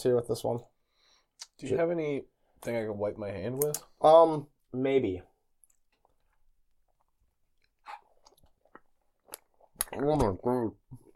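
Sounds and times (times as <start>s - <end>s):
speech: 0.0s - 0.8s, 1.6s - 5.3s, 9.9s - 10.8s
wet chewing of a soft sticky gummy snack close to a microphone: 5.6s - 10.1s.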